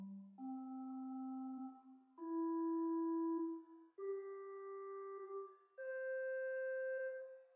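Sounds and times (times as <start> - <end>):
pipe organ Swell Lieblich Bourdon 16 arpeggio: 0.4 - 7.4.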